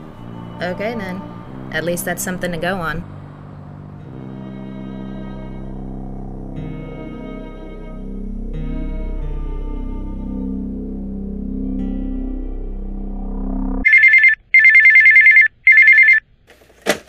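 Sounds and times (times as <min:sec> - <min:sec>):
low droning musical bed: 0:00.0 - 0:13.8
speech: 0:00.6 - 0:03.1
telephone ringing with electronic trilling bursts: 0:13.8 - 0:16.2.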